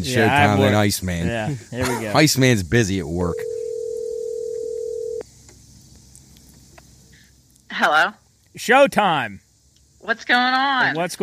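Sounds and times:
speech: 0.0 - 3.5, 7.8 - 9.4, 10.0 - 11.2
telephone call electronic ring tone: 3.3 - 5.2.

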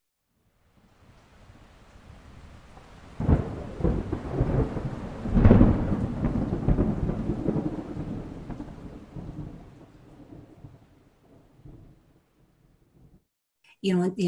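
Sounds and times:
rain hissing: 0.9 - 9.5
heavy rumbling thunder in a thunderstorm: 3.2 - 12.0
speech: 13.8 - 14.2.

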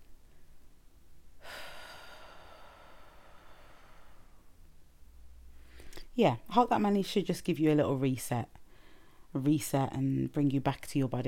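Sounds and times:
deep breath: 1.4 - 4.6, 5.5 - 6.1, 8.6 - 9.3
speech: 6.2 - 8.6, 9.3 - 11.2.

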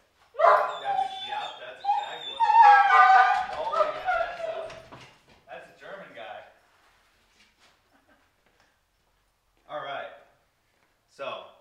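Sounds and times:
two dogs whimpering and howling: 0.4 - 4.9.

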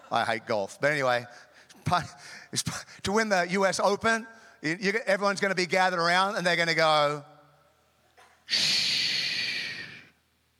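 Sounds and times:
speech: 0.1 - 7.3, 8.5 - 8.8
person shushing for quiet: 8.5 - 10.1.

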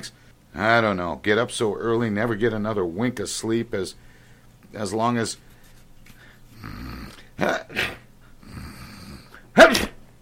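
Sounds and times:
speech: 0.0 - 4.1, 4.7 - 5.4, 6.6 - 8.0, 9.6 - 9.9
man sneezing loudly: 7.4 - 8.1, 9.1 - 10.0.

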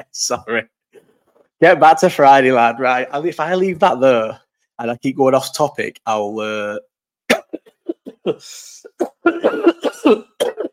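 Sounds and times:
speech: 0.0 - 0.7, 1.6 - 6.9, 8.2 - 10.7
cough with a deep bass rattle: 7.3 - 8.3, 9.0 - 10.7.

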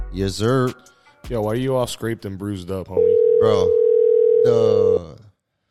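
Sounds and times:
speech: 0.2 - 3.8, 4.4 - 5.2
phone line ring tone while calling a guest: 3.0 - 4.6.

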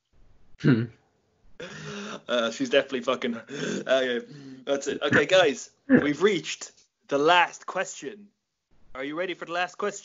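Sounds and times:
single short cough or throat-clear: 0.6 - 1.0, 5.0 - 6.2
speech: 0.6 - 1.0, 2.3 - 10.0.

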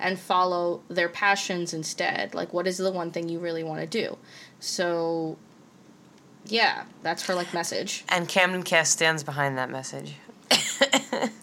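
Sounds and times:
speech: 0.0 - 5.5, 6.4 - 10.3
person coughing: 10.5 - 11.3.

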